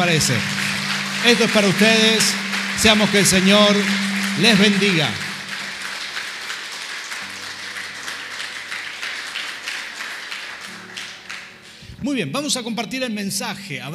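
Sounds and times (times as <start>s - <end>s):
speech: 0.0s - 5.2s, 12.0s - 13.9s
low held tone from an organ or keyboard: 0.0s - 6.2s
crowd applause: 0.0s - 11.8s.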